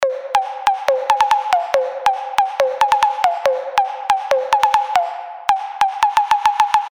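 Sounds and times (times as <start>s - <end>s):
beat loop: 0.0s - 6.9s.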